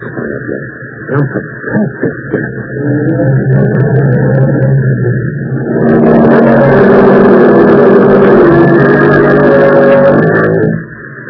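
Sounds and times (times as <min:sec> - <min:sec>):
speech: 0:00.0 - 0:02.2
car revving up and pulling away: 0:02.7 - 0:10.9.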